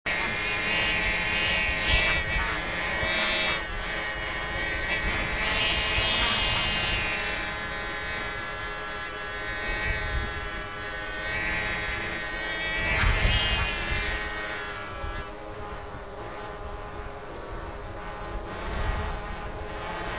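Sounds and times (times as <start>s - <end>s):
dragonfly: 0.1s - 20.1s.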